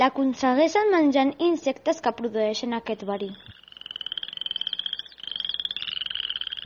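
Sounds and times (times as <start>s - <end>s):
speech: 0.0s - 3.5s
poison dart frog giving a high rapid buzzing trill: 2.7s - 6.6s.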